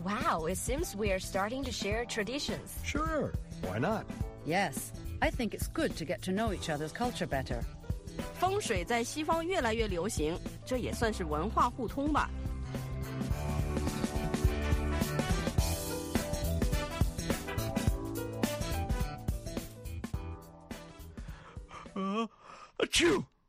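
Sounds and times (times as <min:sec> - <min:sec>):
speech: 0:00.0 - 0:12.8
busy music: 0:00.0 - 0:22.0
loud sneeze: 0:21.8 - 0:23.3.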